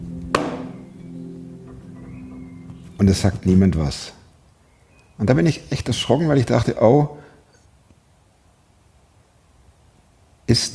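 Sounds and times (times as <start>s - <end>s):
steady low hum: 0.0s - 7.3s
sharp knock on a hospital room door: 0.4s - 0.8s
speech: 3.0s - 4.2s, 5.2s - 7.2s, 10.5s - 10.7s.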